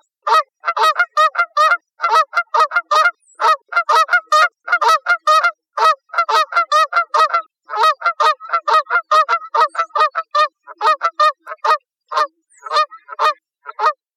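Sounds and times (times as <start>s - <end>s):
Canada goose honking: 0.2s - 14.0s.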